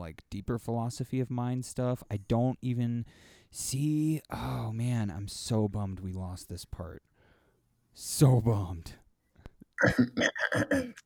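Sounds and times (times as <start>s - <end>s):
speech: 0.1s - 7.1s, 8.0s - 9.0s, 9.8s - 11.0s
person coughing: 9.8s - 11.0s.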